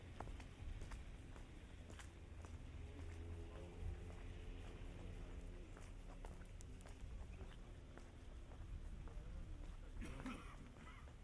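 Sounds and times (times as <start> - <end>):
crunching footsteps on a mountain walk in Dagestan: 0.0 - 11.2
faint voices murmuring: 2.8 - 11.2.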